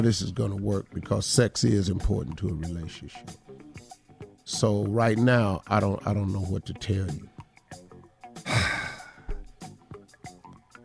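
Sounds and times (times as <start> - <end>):
speech: 0.0 - 3.8, 4.5 - 7.8
heavy breathing: 8.4 - 9.5.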